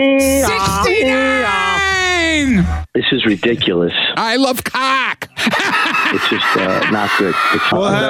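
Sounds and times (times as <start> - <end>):
voice imitating an English two-tone emergency vehicle siren: 0.2 - 2.9
speech: 3.2 - 8.0
laughter: 5.2 - 8.0.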